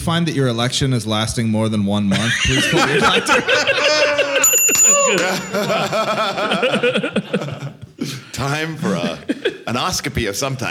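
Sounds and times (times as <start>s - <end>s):
speech: 0.0s - 4.1s, 5.1s - 7.5s, 8.4s - 10.7s
light chuckling: 2.2s - 8.0s
bells ringing: 3.2s - 7.3s.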